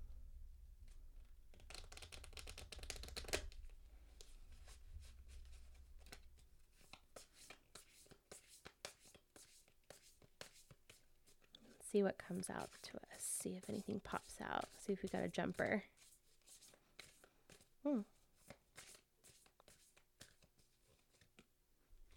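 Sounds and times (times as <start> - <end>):
deck of cards being shuffled by hand: 1.5 - 11.8, 13.6 - 17.7, 18.4 - 21.5
speech: 11.9 - 16.0, 17.9 - 18.2.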